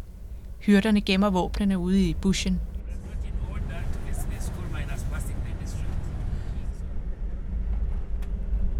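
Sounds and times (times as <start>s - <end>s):
speech: 0.6s - 2.7s
voices: 2.8s - 6.9s
car engine roaring as accelerator is floored: 2.9s - 7.7s.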